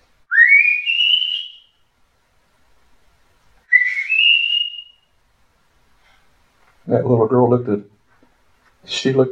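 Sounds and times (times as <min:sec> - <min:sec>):
person whistling two clear rising notes: 0:00.3 - 0:01.7, 0:03.7 - 0:05.1
speech: 0:06.9 - 0:07.9, 0:08.9 - 0:09.3.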